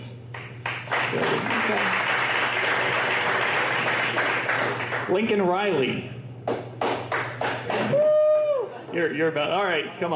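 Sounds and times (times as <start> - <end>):
audience clapping and applauding: 0.2 - 5.5, 6.4 - 9.1
speech: 5.1 - 6.2, 9.0 - 10.1.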